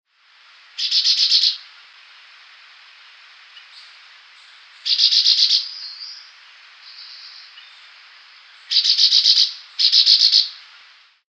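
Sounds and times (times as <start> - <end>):
Chestnut-bellied Euphonia Euphonia pectoralis calling: 0.7 - 1.7, 3.5 - 10.8.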